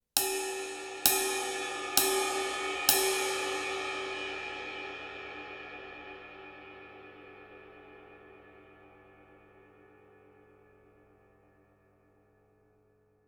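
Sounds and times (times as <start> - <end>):
21-inch K Projection ride cymbal bow strike with powerful sharp bell: 0.2 - 10.3.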